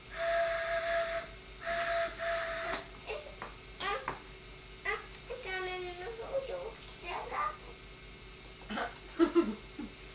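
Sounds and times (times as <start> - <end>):
faint hiss: 0.0 - 10.1
toy train whistle hoots: 0.1 - 2.9.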